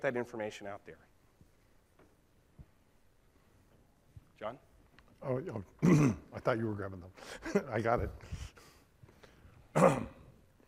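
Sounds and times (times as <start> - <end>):
speech: 0.0 - 1.1, 4.4 - 8.5, 9.8 - 10.2
throat clearing: 5.8 - 6.3, 9.7 - 10.4.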